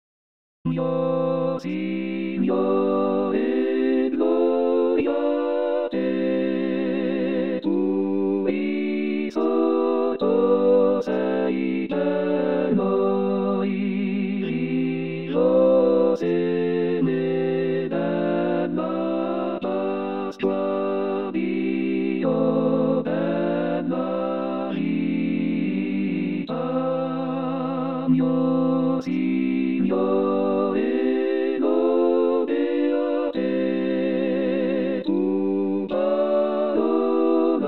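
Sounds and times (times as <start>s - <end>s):
choir singing: 0.7s - 37.6s.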